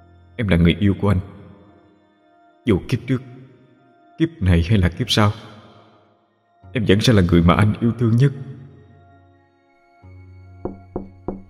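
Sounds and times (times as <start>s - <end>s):
speech: 0.4s - 1.3s, 2.6s - 3.3s, 4.2s - 5.5s, 6.8s - 8.5s
pounding on the door of a rented room: 10.6s - 11.4s.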